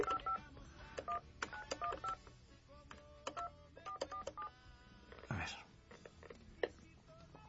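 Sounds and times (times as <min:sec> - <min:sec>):
telephone keypad dialing tones: 0:00.0 - 0:00.4, 0:01.0 - 0:02.2, 0:03.3 - 0:04.5.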